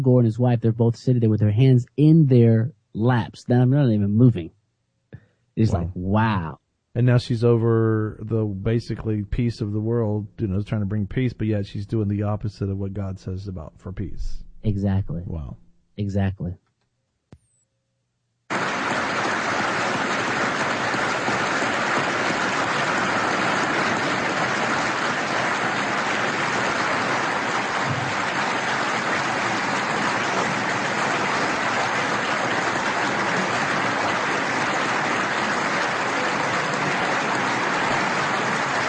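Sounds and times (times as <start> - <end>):
speech: 0.0 - 4.6, 5.6 - 16.6
large audience applauding with many hands clapping: 18.5 - 38.8.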